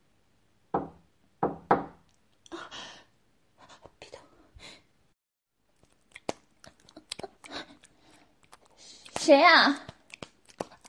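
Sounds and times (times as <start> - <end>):
firm knocking on an office door: 0.7 - 2.0
speech: 9.3 - 9.9.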